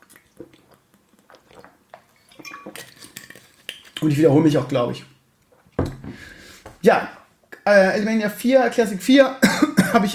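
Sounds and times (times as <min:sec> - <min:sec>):
person sipping and swallowing water: 0:00.0 - 0:04.0
glass clinking: 0:02.3 - 0:02.9
speech: 0:04.0 - 0:05.1, 0:06.8 - 0:10.1.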